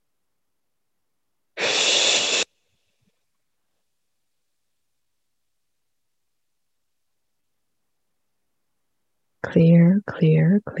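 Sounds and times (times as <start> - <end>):
deep breath: 1.6 - 2.5
speech: 9.5 - 10.7.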